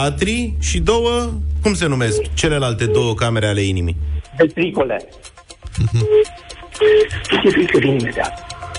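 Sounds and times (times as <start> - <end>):
speech: 0.0 - 8.5
chaotic jumble of electronic tones and warbling sweeps: 1.8 - 5.1, 5.8 - 8.4
laughter: 5.8 - 6.2
telephone ringing in short repeated beeps: 6.0 - 8.4.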